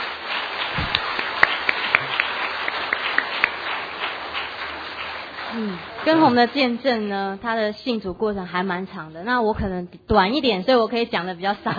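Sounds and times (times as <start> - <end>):
crowd applauding to give praise to God: 0.0 - 7.1
speech: 5.6 - 11.7.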